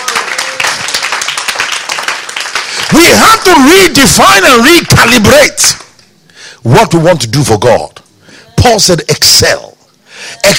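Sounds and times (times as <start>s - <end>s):
audience clapping: 0.0s - 4.0s, 5.7s - 6.0s
speech: 2.9s - 5.8s, 6.6s - 8.0s, 8.6s - 9.7s, 10.3s - 10.5s.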